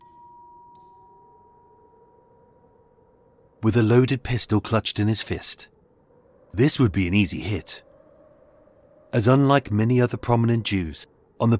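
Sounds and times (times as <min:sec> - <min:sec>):
doorbell chime: 0:00.0 - 0:01.8
speech: 0:03.6 - 0:05.7, 0:06.5 - 0:07.9, 0:09.1 - 0:11.5.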